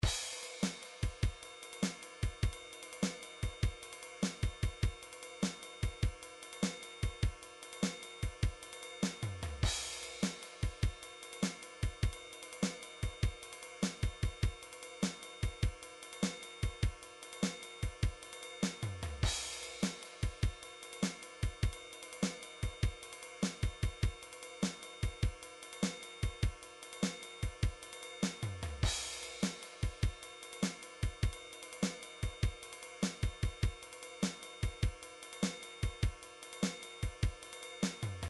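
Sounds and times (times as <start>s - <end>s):
MIDI drums playing slow rock: 0.0s - 38.2s.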